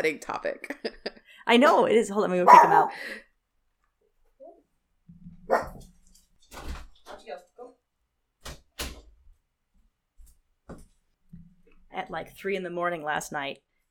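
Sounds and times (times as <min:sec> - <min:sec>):
speech: 0:00.0 - 0:03.3, 0:12.0 - 0:13.7
dog barking: 0:02.4 - 0:03.0, 0:05.4 - 0:05.9.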